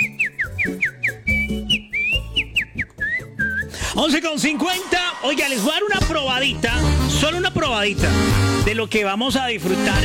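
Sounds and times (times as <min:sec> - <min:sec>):
person whistling a lively bouncy tune: 0:00.0 - 0:04.0
soft low-pitched musical backing with rhythmic beats: 0:00.0 - 0:10.0
speech: 0:04.0 - 0:10.0.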